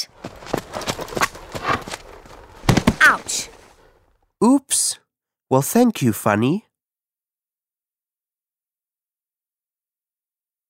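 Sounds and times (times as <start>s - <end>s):
horse hooves clip-clopping: 0.0s - 3.8s
speech: 3.1s - 3.6s, 4.4s - 6.7s.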